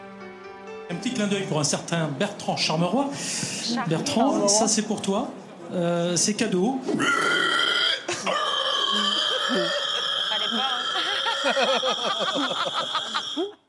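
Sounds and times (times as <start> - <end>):
speech: 0.9 - 7.6, 11.4 - 13.6
man imitating a pig's squeal: 6.9 - 10.3
laughter: 10.8 - 13.6.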